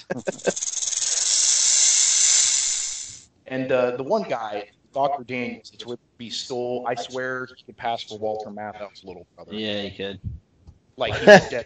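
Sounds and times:
laughter: 0.0 - 0.6, 5.2 - 8.8, 11.0 - 11.6
speech: 0.0 - 0.6, 3.6 - 10.4, 11.0 - 11.6
short throaty bursts: 0.0 - 3.2
snake hissing: 0.0 - 3.3.

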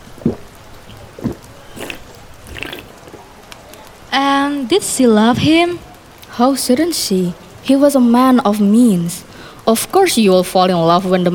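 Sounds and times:
drink being poured into a glass: 0.0 - 2.9
speech: 0.2 - 0.5, 4.1 - 11.3.

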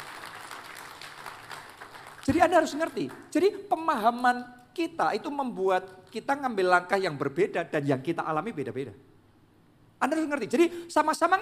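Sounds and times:
large crowd applauding: 0.0 - 3.3
speech: 2.3 - 9.1, 10.0 - 11.4.

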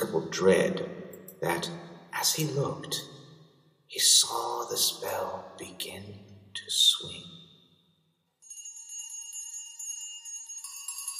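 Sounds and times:
speech: 0.1 - 3.2, 3.9 - 7.4
old house bell ringing: 8.4 - 11.1.

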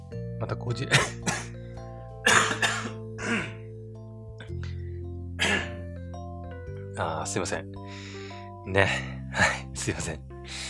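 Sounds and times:
speech: 0.4 - 1.5, 7.0 - 8.1, 8.7 - 10.6
harsh coughing with phlegm: 0.9 - 1.6, 2.2 - 3.7, 5.4 - 5.8
throat clearing: 2.2 - 3.6, 5.4 - 5.8.

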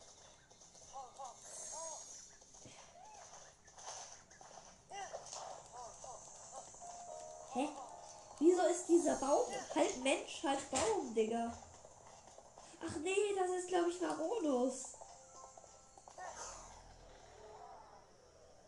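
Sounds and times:
horse hooves clip-clopping: 0.0 - 17.2
speech: 7.6 - 7.8, 8.4 - 11.7, 12.8 - 15.0.

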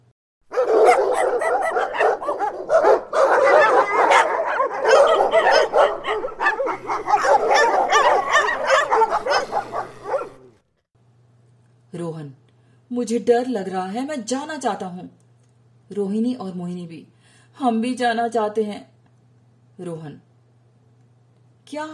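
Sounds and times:
several dogs barking loudly: 0.5 - 10.6
dog whimpering: 0.9 - 2.6, 3.3 - 10.6
speech: 13.0 - 15.2, 15.9 - 18.9, 19.8 - 20.3, 21.7 - 21.9.

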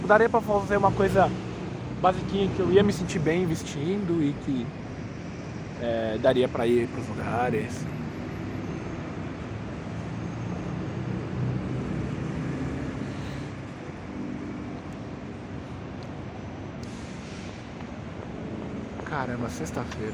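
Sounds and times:
cars driving past on a street: 0.0 - 20.1
speech: 0.1 - 1.4, 2.0 - 4.8, 5.8 - 8.0, 19.2 - 20.1.

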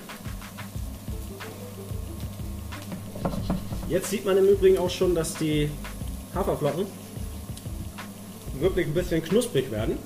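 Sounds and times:
low hum: 0.0 - 10.0
frying pan shaken and swirled on a stovetop: 2.9 - 4.2
speech: 3.9 - 7.0, 8.6 - 10.0.

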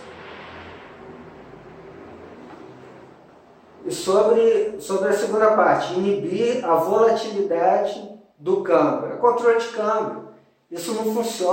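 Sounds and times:
bus passing by: 0.0 - 4.9
speech: 3.8 - 11.5.

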